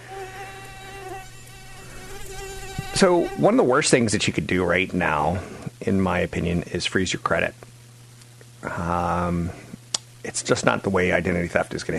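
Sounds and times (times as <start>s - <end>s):
mosquito buzzing: 0.0s - 3.9s
low hum: 0.0s - 11.9s
speech: 2.8s - 7.7s, 8.6s - 9.6s, 10.2s - 11.9s.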